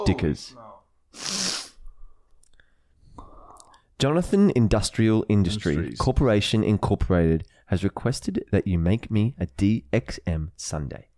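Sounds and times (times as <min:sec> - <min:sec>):
speech: 0:00.1 - 0:01.4, 0:04.0 - 0:11.1
person sneezing: 0:01.2 - 0:01.8.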